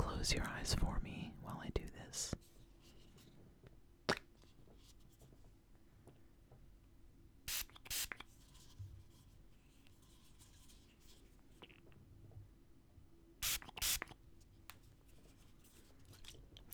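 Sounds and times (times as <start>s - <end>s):
speech: 0.2s - 2.4s
makeup setting spray spritzes: 13.4s - 14.0s.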